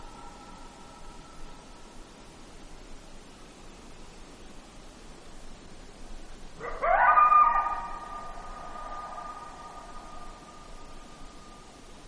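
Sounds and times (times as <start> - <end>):
steady background hiss: 0.0 - 12.0
coyote howl in Alaska: 6.6 - 11.6.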